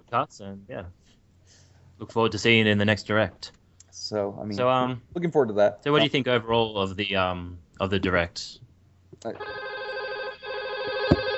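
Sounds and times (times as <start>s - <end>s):
speech: 0.1s - 8.6s, 9.2s - 9.7s
landline telephone ringing: 9.4s - 11.3s.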